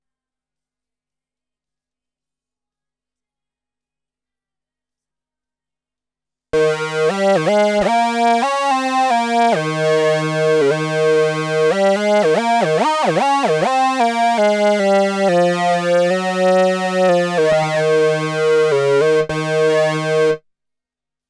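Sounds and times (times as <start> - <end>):
synthesizer: 6.6 - 20.4.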